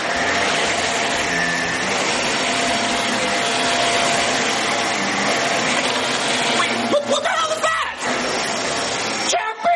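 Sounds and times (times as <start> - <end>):
vacuum cleaner running: 0.0 - 9.6.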